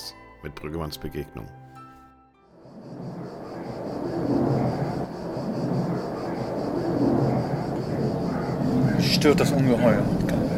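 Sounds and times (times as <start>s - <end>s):
speech: 0.4s - 1.7s, 9.1s - 10.2s
faint steady whine: 2.6s - 10.5s
propeller airplane circling overhead: 2.6s - 10.5s.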